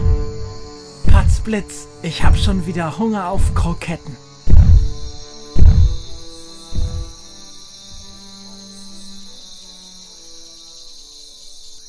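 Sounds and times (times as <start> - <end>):
steady electrical hum: 0.0 - 7.3
faint high whine: 0.0 - 11.8
time machine deep booming throbs: 1.1 - 1.5, 4.4 - 7.2
speech: 1.2 - 4.3.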